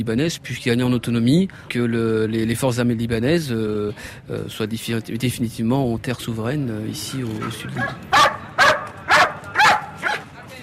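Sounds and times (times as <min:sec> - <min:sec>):
speech: 0:00.0 - 0:08.4
dog barking and whimpering: 0:07.4 - 0:10.2.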